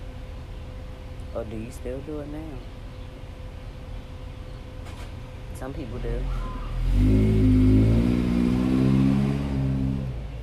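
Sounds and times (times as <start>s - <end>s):
speech: 1.3s - 2.8s, 5.6s - 7.4s
mail truck engine revving while passing by: 6.2s - 10.3s.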